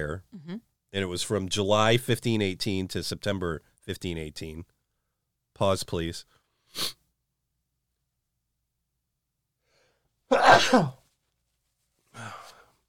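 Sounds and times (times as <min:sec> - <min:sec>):
speech: 0:00.0 - 0:04.7, 0:05.6 - 0:07.0, 0:10.3 - 0:11.0
loud sneeze: 0:10.3 - 0:11.0.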